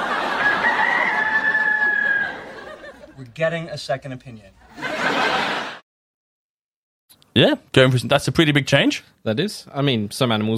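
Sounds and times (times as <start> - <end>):
rooster crowing: 0.0 - 2.9
laughter: 0.0 - 3.3, 4.6 - 5.8
speech: 3.4 - 4.6, 7.4 - 10.5.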